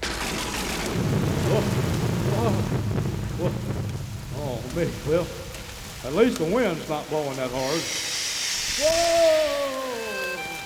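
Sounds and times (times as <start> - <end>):
deep rolling thunder rumble: 0.0 - 7.2
steady heavy rain hissing on a cold wet windy night: 0.0 - 10.6
speech: 1.5 - 1.9, 4.8 - 5.4, 6.0 - 8.1, 8.8 - 9.8.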